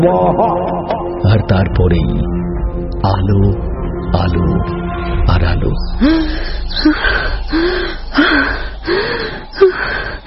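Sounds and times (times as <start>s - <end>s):
speech: 0.0s - 9.0s
heavy panting after waking from a nightmare: 6.0s - 10.2s.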